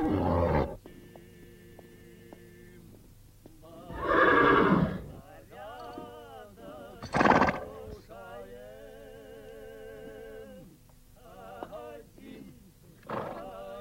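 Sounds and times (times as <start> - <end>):
foal neighing while searching for its mother among horses: 0.0 - 0.8, 3.9 - 5.2.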